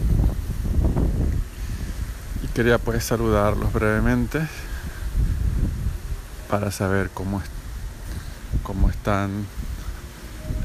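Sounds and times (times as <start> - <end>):
wind gusting through palm tree branches: 0.0 - 10.6
speech: 2.6 - 4.7, 6.5 - 7.6, 8.6 - 9.6.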